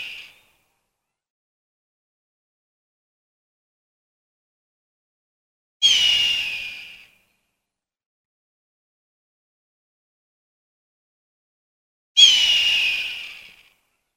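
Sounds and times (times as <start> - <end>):
hawk giving a raspy drawn-out scream: 5.8 - 7.0, 12.2 - 13.6.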